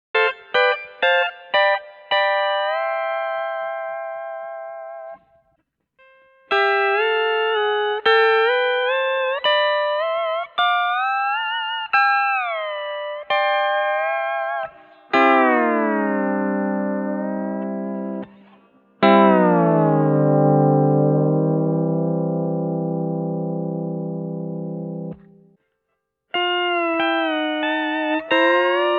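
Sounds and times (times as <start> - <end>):
guitar through amp modeler: 0.2 - 5.4, 6.0 - 25.6, 26.3 - 28.9.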